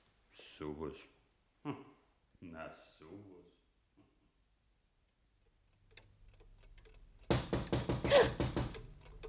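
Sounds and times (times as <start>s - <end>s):
speech: 0.6s - 4.1s
pounding on a door: 7.3s - 9.0s.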